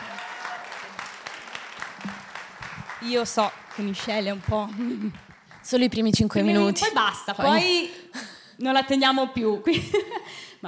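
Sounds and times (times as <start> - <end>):
audience applauding: 0.0 - 6.7
speech: 3.0 - 10.6.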